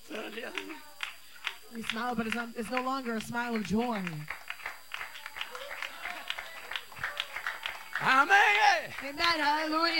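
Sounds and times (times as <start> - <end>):
youth audience applauding: 0.0 - 9.9
speech: 1.7 - 4.4, 8.0 - 9.9.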